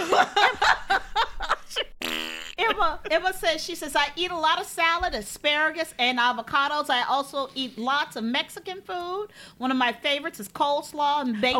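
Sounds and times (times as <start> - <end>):
laughter: 0.0 - 1.9
speech: 0.2 - 0.4, 3.1 - 11.5
sputtering and buzzing fart noises: 2.0 - 2.8.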